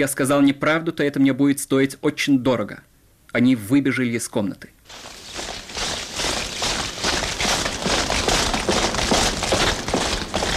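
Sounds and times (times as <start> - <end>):
speech: 0.0 - 5.2
soldiers' echoing footsteps marching in a yard: 4.9 - 10.5.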